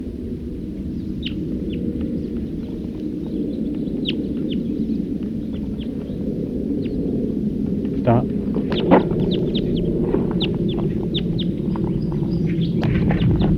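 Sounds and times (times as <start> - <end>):
steady loud low rumble of wind or noise: 0.0 - 13.5
wild birds calling in short high chirps: 0.0 - 13.5.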